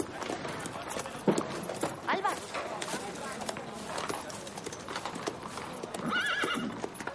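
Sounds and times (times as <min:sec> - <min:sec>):
busy outdoor bustle: 0:00.0 - 0:07.1
faint voices: 0:00.0 - 0:07.1
horse hooves clip-clopping: 0:00.0 - 0:07.1
horse short whinny: 0:06.0 - 0:06.8.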